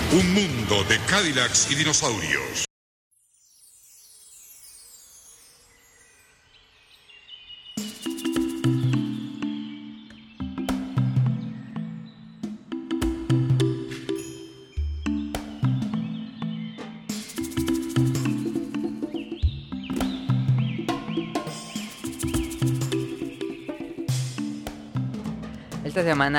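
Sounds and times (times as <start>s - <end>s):
speech: 0.1s - 2.7s, 26.0s - 26.3s
bird calls in cartoon music: 6.8s - 12.8s, 14.8s - 24.7s
loud energetic cartoon theme tune: 7.8s - 25.3s.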